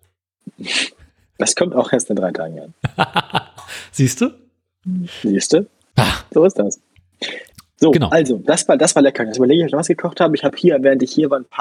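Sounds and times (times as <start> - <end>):
speech: 1.4 - 3.3, 3.9 - 11.6
laughter: 2.8 - 4.2
person sneezing: 6.0 - 6.4.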